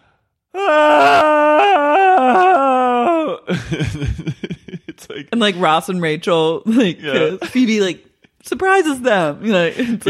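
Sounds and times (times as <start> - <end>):
people wailing and screaming: 0.6 - 3.5
speech: 3.5 - 4.4, 5.2 - 10.0
laughter: 3.5 - 5.3.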